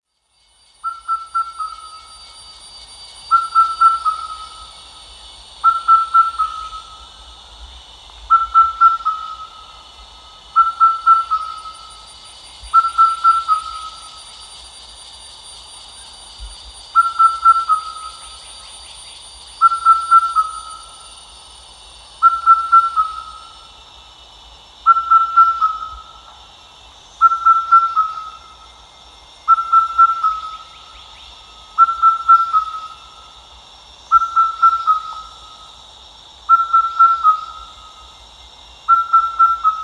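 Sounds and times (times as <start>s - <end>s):
Indian cuckoo calling: 0.8s - 2.4s, 3.2s - 4.8s, 5.6s - 7.1s, 8.3s - 9.8s, 10.5s - 14.5s, 16.9s - 18.6s, 19.6s - 21.0s, 22.2s - 23.6s, 24.9s - 26.2s, 27.2s - 28.6s, 29.5s - 30.9s, 31.7s - 33.1s, 34.1s - 35.7s, 36.5s - 38.0s, 38.9s - 39.8s.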